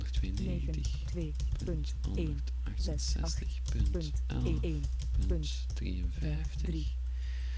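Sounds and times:
man talking: 0:00.0 - 0:01.0, 0:01.9 - 0:07.0
steady low electrical hum: 0:00.0 - 0:07.5
keyboard typing an IP address into FileZilla: 0:00.2 - 0:02.3, 0:03.6 - 0:06.8.

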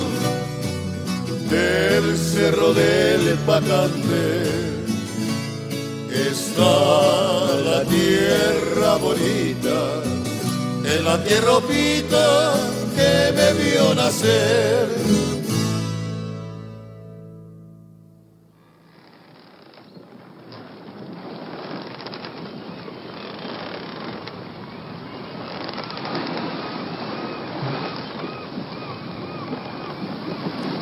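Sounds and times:
pirate ship sailing through ocean waves: 0:00.0 - 0:15.9, 0:19.0 - 0:30.7
steady loud rushing water: 0:00.0 - 0:16.0, 0:19.0 - 0:30.7
wind at sea: 0:00.0 - 0:30.7
speech: 0:01.5 - 0:04.8, 0:06.2 - 0:15.4.

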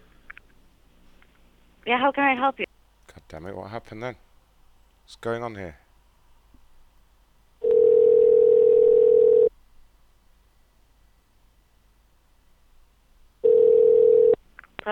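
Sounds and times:
speech: 0:01.8 - 0:04.3, 0:05.1 - 0:05.8
telephone dial tone after a phone machine disconnected: 0:07.6 - 0:09.5, 0:13.4 - 0:14.4.

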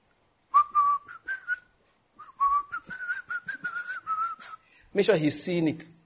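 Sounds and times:
person whistling a short jaunty tune: 0:00.5 - 0:04.6
speech: 0:05.0 - 0:06.0.

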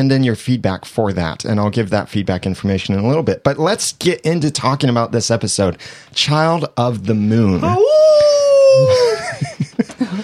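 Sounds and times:
speech: 0:00.0 - 0:10.2
co-host imitating a wolf howl: 0:07.6 - 0:09.3
laughter: 0:08.8 - 0:10.2.

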